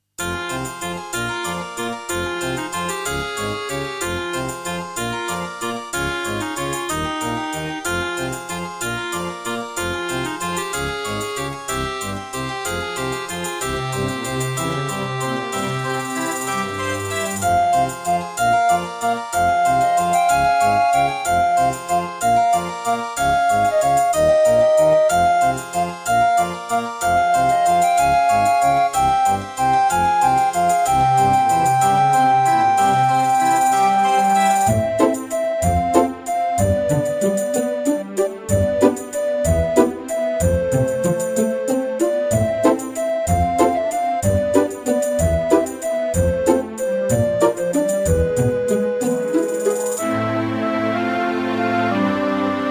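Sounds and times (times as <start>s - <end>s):
NEC XR385 sound module in GS mode: 0.3s - 52.6s.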